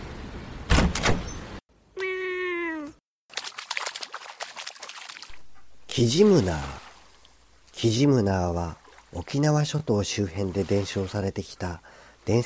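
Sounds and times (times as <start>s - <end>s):
door clunk: 0.7s - 1.5s
door creaking open with a falling squeal: 0.7s - 1.6s
speech: 6.0s - 6.8s, 7.8s - 12.4s.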